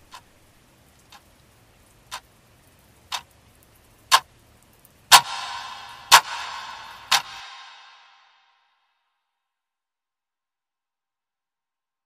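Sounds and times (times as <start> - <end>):
room clock ticking: 0.0 - 0.3, 0.9 - 1.4, 2.1 - 3.4, 5.1 - 8.2
soft hissing wash: 0.0 - 8.3.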